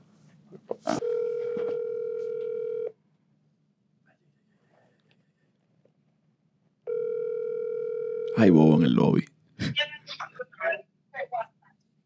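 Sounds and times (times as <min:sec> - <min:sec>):
buzzy phone ringback tone over a speakerphone: 0:00.9 - 0:02.9, 0:06.9 - 0:08.4
speech: 0:08.4 - 0:09.3.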